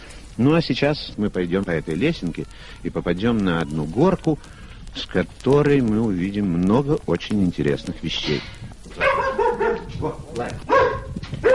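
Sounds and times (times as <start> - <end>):
speech: 0.4 - 9.3, 10.0 - 10.9
dog barking at visitors: 9.0 - 10.0, 10.6 - 11.5.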